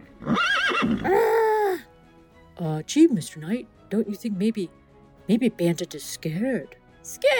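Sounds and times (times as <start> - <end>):
horse neighing: 0.1 - 1.2
speech: 2.8 - 7.3.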